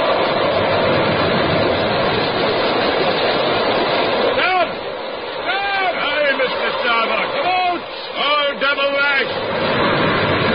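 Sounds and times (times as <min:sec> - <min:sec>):
roaring stormy sea in a tempest: 0:00.0 - 0:10.5.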